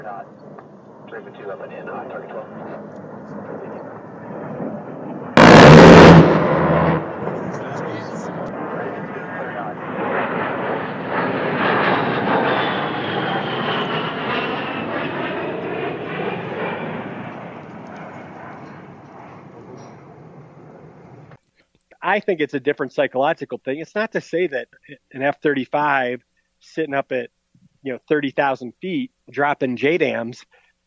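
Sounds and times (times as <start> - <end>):
speech: 0.0 - 0.5, 1.1 - 4.7, 22.1 - 30.6
A-10 attack jet roaring past: 0.0 - 21.4
loud ripping cannon burst: 5.4 - 9.0.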